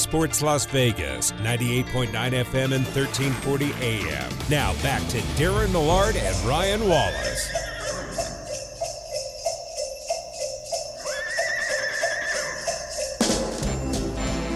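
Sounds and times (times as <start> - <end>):
speech: 0.1 - 7.7
walking horse clip-clop hoofbeats: 6.3 - 14.5
horse whinnying: 6.6 - 8.6, 11.0 - 13.0.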